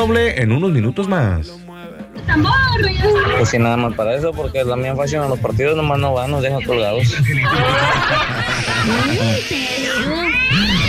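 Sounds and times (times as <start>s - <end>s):
speech: 0.0s - 10.8s
laughter: 7.0s - 10.8s
cat meowing: 8.5s - 10.8s.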